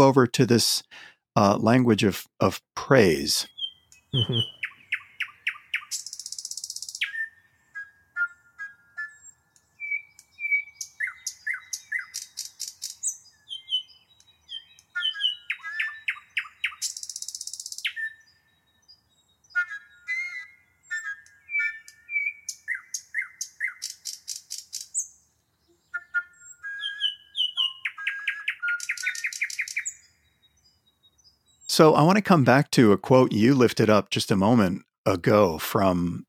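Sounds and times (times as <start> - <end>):
speech: 0.0 - 3.5, 4.1 - 4.6, 31.8 - 36.2
nightingale singing in Berlin: 3.4 - 32.2.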